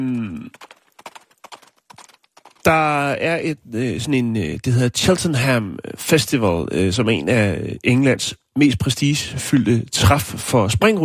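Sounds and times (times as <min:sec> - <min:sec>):
speech: 0:00.0 - 0:00.7, 0:02.6 - 0:11.0
racehorse hooves clip-clopping: 0:00.5 - 0:02.9.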